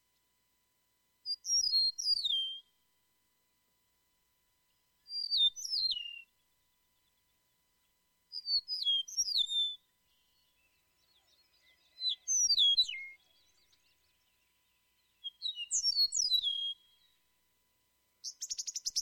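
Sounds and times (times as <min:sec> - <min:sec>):
Eastern Meadowlark whistled song: 0:01.2 - 0:02.9, 0:04.7 - 0:07.5, 0:08.3 - 0:17.3, 0:18.2 - 0:19.0.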